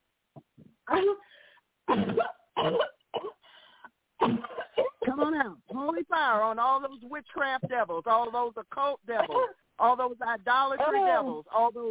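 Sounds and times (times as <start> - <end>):
speech: 1.0 - 1.3, 6.3 - 11.8
person coughing harshly: 1.9 - 3.4, 4.2 - 5.2, 9.2 - 9.6.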